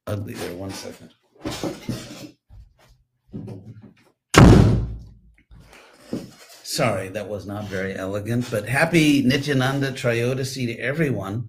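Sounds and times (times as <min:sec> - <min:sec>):
speech: 0:00.1 - 0:02.2, 0:06.8 - 0:11.4
door pushed shut with a loud thunk: 0:04.4 - 0:05.1.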